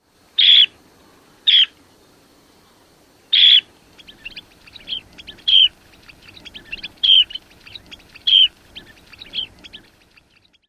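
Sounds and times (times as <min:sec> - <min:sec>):
pjeev bird calls: 0:00.4 - 0:00.8, 0:01.4 - 0:01.8, 0:03.3 - 0:10.6.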